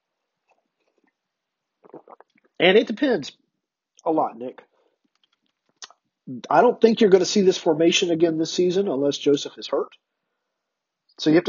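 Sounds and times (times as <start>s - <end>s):
person slurping sips of coffee: 1.8s - 2.6s
speech: 2.6s - 3.4s, 4.0s - 4.7s, 6.3s - 10.1s, 11.2s - 11.4s.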